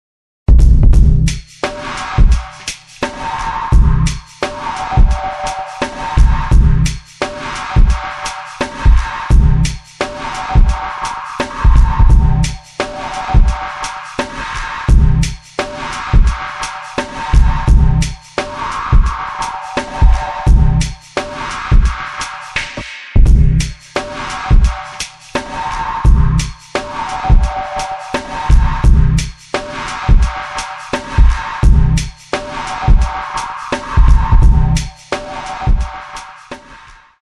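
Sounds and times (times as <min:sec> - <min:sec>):
processed drums: 0:00.5 - 0:37.2.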